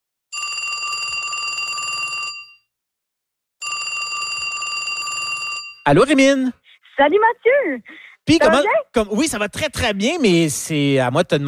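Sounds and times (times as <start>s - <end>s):
telephone ringback tone on an outgoing call: 0.4s - 2.7s, 3.6s - 5.8s
speech: 5.8s - 11.4s.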